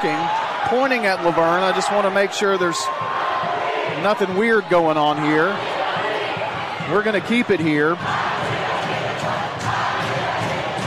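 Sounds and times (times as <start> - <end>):
speech: 0.0 - 5.7, 6.9 - 8.2
large crowd roaring and cheering: 0.0 - 10.8.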